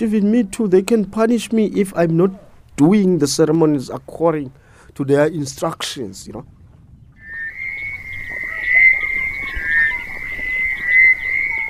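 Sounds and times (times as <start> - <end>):
speech: 0.0 - 6.6
chorus of frogs croaking by a river at Hobani: 7.2 - 11.6.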